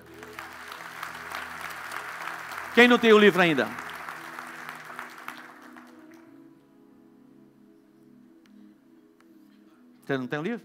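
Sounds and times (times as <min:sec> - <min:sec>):
large audience applauding: 0:00.0 - 0:06.3
faint low hum of sustained instrumental tones: 0:00.0 - 0:10.6
speech: 0:02.8 - 0:03.8, 0:10.1 - 0:10.6.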